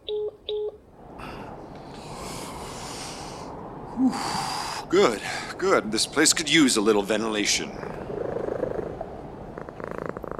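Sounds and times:
speech: 4.0s - 8.2s
cat purring: 7.4s - 10.3s.

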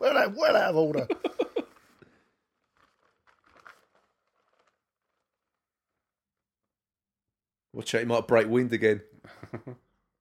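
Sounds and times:
speech: 0.2s - 1.3s, 7.8s - 9.9s
paper rustling and crinkling: 1.3s - 6.1s.

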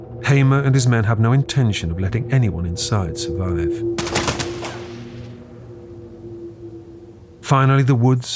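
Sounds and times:
speech: 0.2s - 4.2s, 7.5s - 8.3s
burst of gunfire aimed at a Ford car rolling toward the side of a road: 4.0s - 5.3s.

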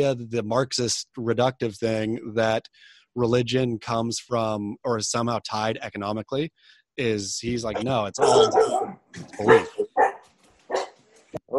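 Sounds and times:
speech: 0.0s - 9.9s
faint murmuring voices: 7.7s - 9.8s
dog barking in short sharp bursts: 8.2s - 11.5s.

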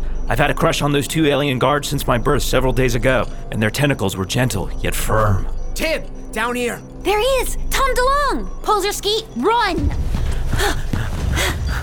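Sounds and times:
speech: 0.3s - 10.0s, 10.6s - 10.9s
heavy rhythmic breathing: 10.2s - 11.8s.

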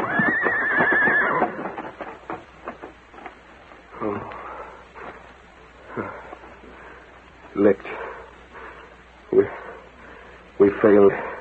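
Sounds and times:
horse whinnying: 0.0s - 1.9s
horse hooves clopping: 0.0s - 11.3s
thuds: 1.4s - 3.4s.

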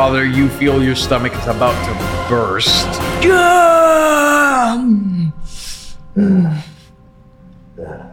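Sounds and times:
speech: 0.0s - 5.5s, 6.2s - 6.7s
guttural groan: 3.2s - 6.9s, 7.7s - 8.1s
voice imitating heavy monstrous breathing: 4.7s - 6.9s.

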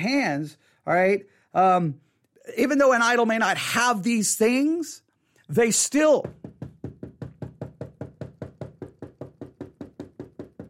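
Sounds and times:
speech: 0.0s - 6.7s
rapid knocking on a solid surface: 6.2s - 10.6s.

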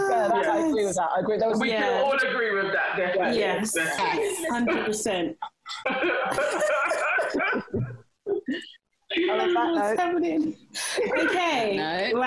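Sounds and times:
speech: 0.9s - 7.6s, 9.5s - 12.2s
coughing and throat clearing: 4.6s - 9.5s.

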